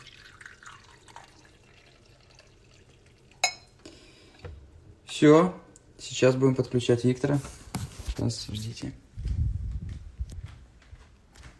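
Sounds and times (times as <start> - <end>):
brewed coffee trickling into a cup: 0.0 - 4.4
ceramic clink: 3.3 - 3.8
speech: 5.2 - 7.6, 8.2 - 9.0.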